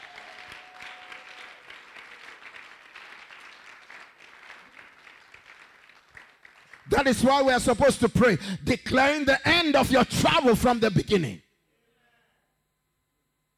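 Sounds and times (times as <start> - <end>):
applause during a sermon: 0.0 - 7.8
speech: 6.9 - 11.4.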